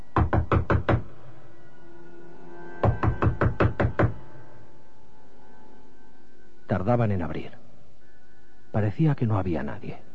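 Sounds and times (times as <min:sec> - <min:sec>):
person knocking on a door: 0:00.2 - 0:01.1, 0:02.8 - 0:04.2
speech: 0:06.8 - 0:07.6, 0:08.7 - 0:10.1.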